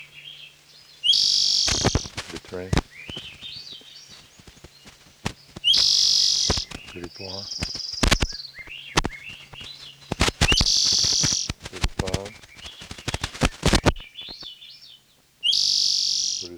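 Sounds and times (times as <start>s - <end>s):
wild Swainson's thrushes singing fluting whistled phrases: 1.0s - 14.4s
sharp loud clicks: 1.5s - 14.5s
speech: 2.5s - 3.3s, 7.0s - 7.7s.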